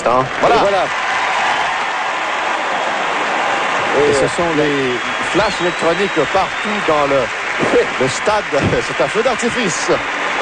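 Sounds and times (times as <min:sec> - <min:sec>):
speech: 0:00.0 - 0:01.1, 0:04.0 - 0:10.4
stadium crowd applauding and cheering in an ovation during a ceremony: 0:00.0 - 0:10.4.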